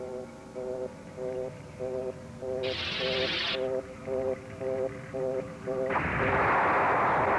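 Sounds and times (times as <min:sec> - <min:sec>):
steady rhythmic electronic beeps: 0:00.0 - 0:06.5
loaded cannon firing: 0:05.9 - 0:07.3.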